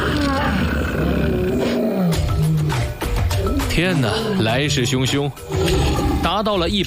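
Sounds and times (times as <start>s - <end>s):
lion pride roaring at sunset: 0.0s - 3.7s, 5.4s - 6.4s
speech: 3.8s - 6.8s.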